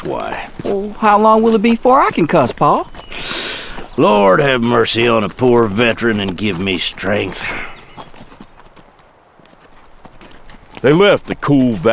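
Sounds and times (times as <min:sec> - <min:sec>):
speech: 0:00.0 - 0:02.9, 0:04.0 - 0:07.7, 0:10.8 - 0:11.9
horses' hooves clip-clopping as riders travel: 0:00.0 - 0:11.9.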